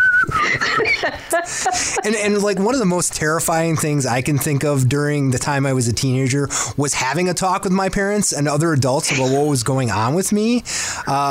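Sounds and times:
father whistling a short melodic phrase: 0.0s - 0.5s
laughter: 0.3s - 5.0s
speech: 0.8s - 11.3s.

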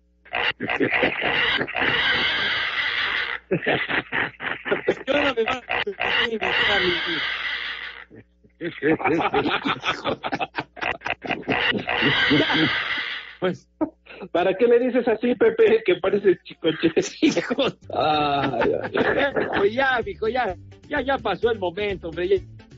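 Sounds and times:
laughter: 0.5s - 13.3s, 14.1s - 20.5s
speech: 0.6s - 2.6s, 3.5s - 7.4s, 8.1s - 10.6s, 11.5s - 22.6s
person shrieking pig-like squealing screams: 0.7s - 3.4s, 4.8s - 8.2s, 11.2s - 13.4s.

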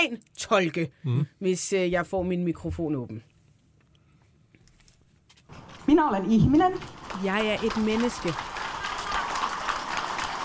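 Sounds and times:
speech: 0.0s - 3.3s, 5.9s - 8.6s
crowd applauding during a recorded speech: 6.8s - 10.4s.

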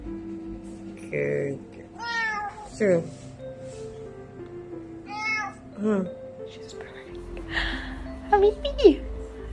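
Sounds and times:
speech: 1.1s - 1.7s, 2.8s - 3.2s, 5.8s - 6.2s, 8.4s - 9.0s
cat meowing: 2.0s - 2.7s, 5.0s - 5.6s.

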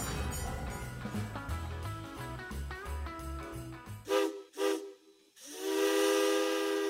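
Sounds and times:
music with a steady beat: 0.0s - 4.1s
train whistle blowing: 4.1s - 6.8s.

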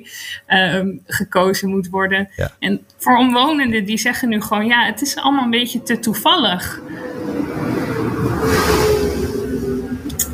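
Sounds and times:
speech: 0.0s - 7.1s
tractor engine rumbling while driving past outside: 3.7s - 10.3s.

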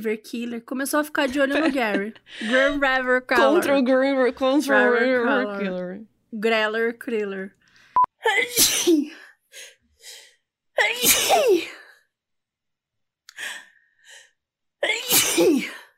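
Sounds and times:
speech: 0.0s - 7.6s, 8.2s - 9.7s, 10.8s - 11.8s, 14.8s - 15.8s
laughter: 1.3s - 2.8s
person sneezing: 8.2s - 9.2s, 10.8s - 11.9s, 14.8s - 15.9s.

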